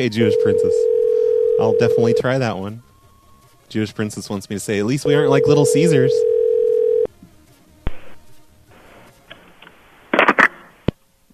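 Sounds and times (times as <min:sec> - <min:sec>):
speech: 0:00.0 - 0:01.0, 0:01.6 - 0:02.9, 0:03.7 - 0:06.4
telephone dial tone after a hang-up: 0:00.2 - 0:02.2, 0:05.1 - 0:07.1.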